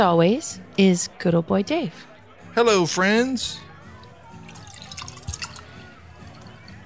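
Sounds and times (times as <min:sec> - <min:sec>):
speech: 0:00.0 - 0:03.7
beer being poured: 0:03.9 - 0:06.8.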